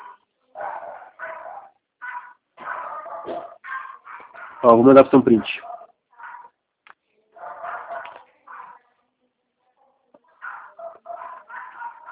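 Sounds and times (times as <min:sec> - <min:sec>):
dog barking angrily: 0:00.0 - 0:06.6, 0:07.4 - 0:08.8, 0:10.4 - 0:12.0
speech: 0:04.6 - 0:05.7.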